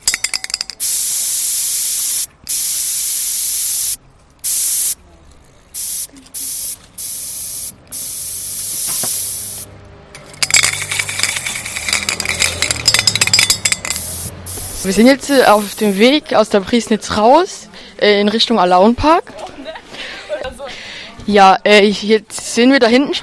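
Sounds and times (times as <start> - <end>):
aerosol spray paint can hissing over a stencil: 0.8 - 5.0, 5.7 - 9.7, 10.7 - 16.2
clattering: 10.2 - 14.2
speech: 14.9 - 19.3, 21.3 - 23.2.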